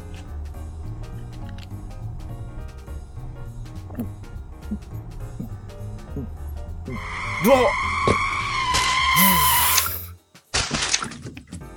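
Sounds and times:
car tires screeching from braking hard: 0:01.0 - 0:09.8
speech: 0:04.0 - 0:05.6, 0:06.2 - 0:07.9.

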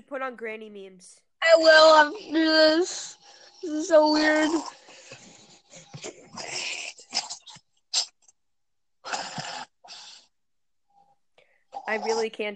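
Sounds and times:
speech: 0:00.1 - 0:04.8, 0:11.9 - 0:12.5
dog grunting and snorting while its belly is rubbed: 0:03.9 - 0:08.2, 0:09.0 - 0:10.3.

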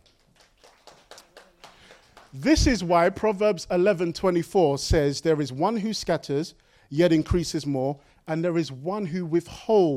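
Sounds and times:
scattered faint audience applause: 0:00.0 - 0:02.6
speech: 0:02.3 - 0:09.9.

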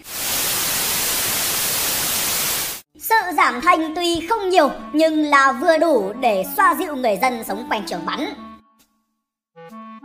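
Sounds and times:
television static hiss: 0:00.0 - 0:02.8
speech: 0:03.3 - 0:08.4.

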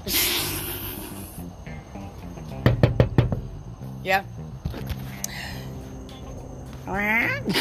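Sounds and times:
sharp knocking on a door: 0:02.6 - 0:03.6
speech: 0:04.0 - 0:05.0, 0:06.9 - 0:07.5.

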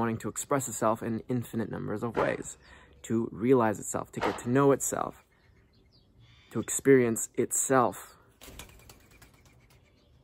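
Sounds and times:
speech: 0:00.0 - 0:05.2, 0:06.5 - 0:08.7
bird wings flapping as it takes off and flies away: 0:08.4 - 0:09.9.

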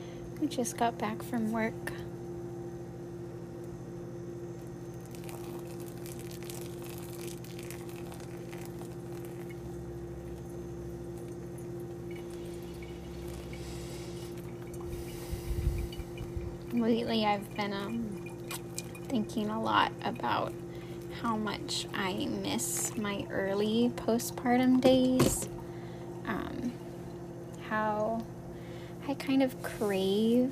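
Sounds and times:
steady low hum: 0:00.0 - 0:30.5
speech: 0:00.4 - 0:02.0, 0:16.9 - 0:18.0, 0:19.1 - 0:20.6, 0:21.2 - 0:25.6, 0:27.7 - 0:28.3, 0:29.1 - 0:30.5
liquid trickling and pouring: 0:04.9 - 0:23.4
glass and utensils clinking: 0:11.3 - 0:20.5.

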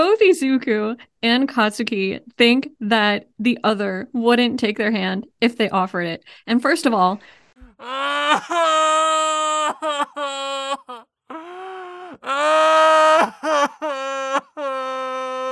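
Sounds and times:
speech: 0:00.1 - 0:11.0
voice imitating sobbing and wailing: 0:07.6 - 0:15.5.

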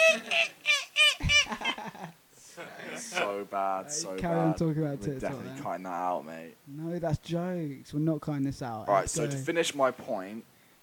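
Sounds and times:
person voicing a loud nasal seagull impression: 0:00.0 - 0:01.6
quieter laughter or chatter: 0:00.0 - 0:03.3
speech: 0:03.4 - 0:10.5.

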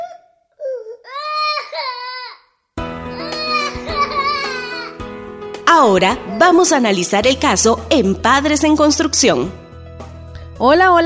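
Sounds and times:
two children crying: 0:00.0 - 0:02.5, 0:03.1 - 0:05.0
speech: 0:05.7 - 0:09.6, 0:10.6 - 0:11.0.

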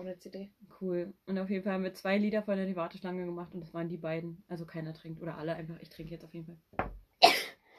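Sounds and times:
speech: 0:00.0 - 0:07.0
person sneezing: 0:07.2 - 0:07.6.

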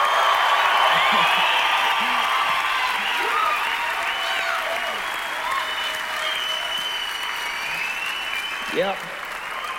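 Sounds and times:
church congregation applauding: 0:00.0 - 0:09.7.

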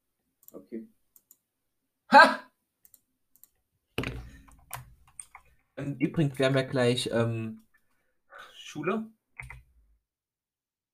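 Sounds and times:
computer keyboard and mouse clicks: 0:00.4 - 0:01.5, 0:02.8 - 0:05.6, 0:09.4 - 0:09.7
speech: 0:00.5 - 0:01.0, 0:02.1 - 0:02.4, 0:05.8 - 0:07.6, 0:08.7 - 0:09.6.

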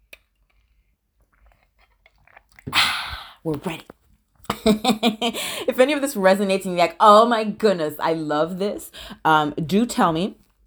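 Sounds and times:
person sipping water: 0:00.0 - 0:04.0
slurps and gulps of water: 0:00.0 - 0:04.6
speech: 0:03.4 - 0:04.0, 0:04.6 - 0:10.4.

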